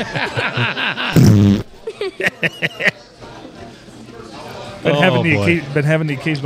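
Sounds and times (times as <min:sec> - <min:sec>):
speech: 0:00.0 - 0:00.7, 0:02.2 - 0:03.0, 0:04.8 - 0:06.4
short breathy snickers of laughter: 0:00.0 - 0:03.0
loud buzzy fart: 0:01.2 - 0:01.8.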